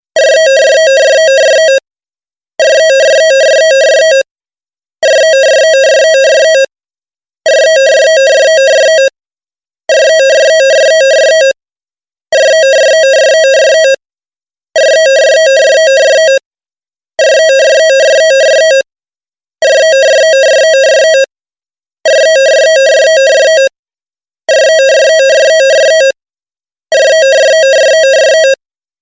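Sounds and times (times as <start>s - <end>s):
office phone ringing: 0.2s - 1.8s, 2.6s - 4.3s, 5.0s - 6.7s, 7.5s - 9.2s, 9.9s - 11.6s, 12.3s - 14.0s, 14.8s - 16.4s, 17.2s - 18.9s, 19.6s - 21.3s, 22.0s - 23.8s, 24.5s - 26.2s, 26.9s - 28.6s.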